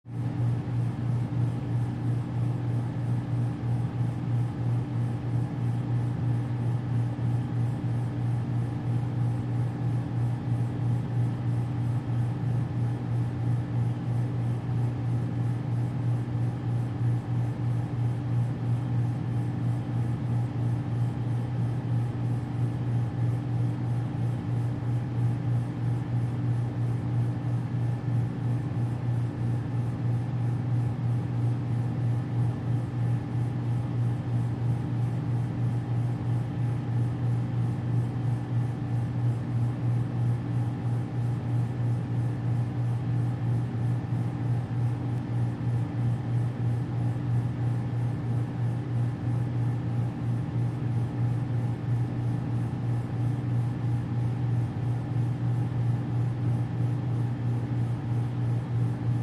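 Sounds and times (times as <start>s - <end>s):
heavy AC hum buzz: 0.0s - 59.2s.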